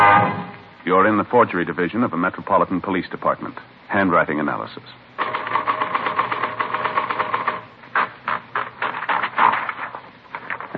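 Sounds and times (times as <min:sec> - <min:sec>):
speech: 0:00.9 - 0:05.1
mechanical typewriter typing: 0:05.2 - 0:10.7.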